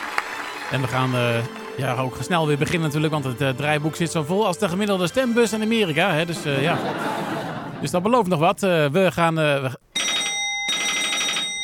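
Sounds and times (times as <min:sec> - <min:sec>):
speech: 0:00.7 - 0:09.8
laughter: 0:06.2 - 0:08.3
telephone ringing with electronic trills: 0:09.9 - 0:11.6.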